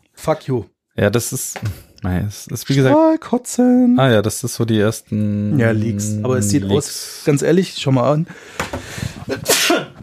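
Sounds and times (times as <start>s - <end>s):
speech: 0.2s - 9.8s
single sharp sneeze: 9.3s - 10.0s.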